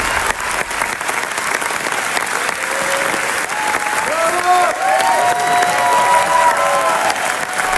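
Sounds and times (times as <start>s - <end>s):
large audience applauding: 0.0s - 7.7s
cheers and whoops: 1.2s - 7.7s.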